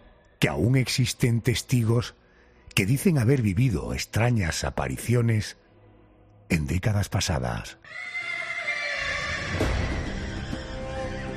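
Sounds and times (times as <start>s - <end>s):
speech: 0.4s - 5.6s, 6.5s - 8.1s
horse whinnying: 7.8s - 10.8s.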